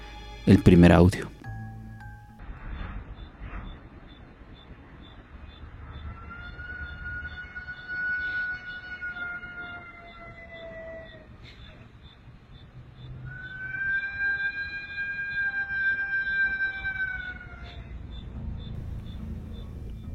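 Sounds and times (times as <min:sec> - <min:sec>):
speech: 0:00.5 - 0:01.4
steady low rumble: 0:01.3 - 0:06.2, 0:17.9 - 0:20.1
eerie drawn-out mournful wailing lament: 0:02.4 - 0:20.1.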